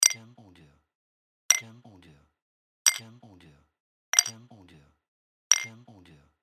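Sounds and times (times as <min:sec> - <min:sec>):
bottles clinking: 0:04.2 - 0:04.4, 0:05.5 - 0:05.7.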